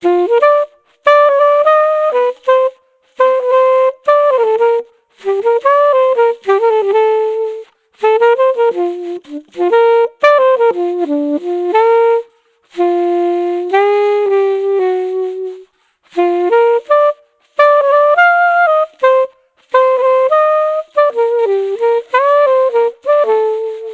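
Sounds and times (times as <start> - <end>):
alto saxophone: 0.0 - 23.9.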